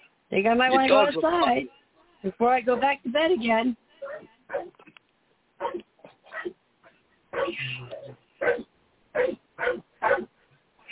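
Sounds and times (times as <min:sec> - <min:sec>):
speech: 0:00.3 - 0:04.3
dog barking and whimpering: 0:04.0 - 0:04.8, 0:05.6 - 0:10.3.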